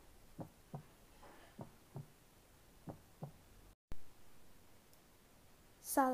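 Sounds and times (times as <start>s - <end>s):
heartbeat: 0.4s - 0.9s, 1.6s - 2.1s, 2.9s - 3.4s
speech: 6.0s - 6.1s.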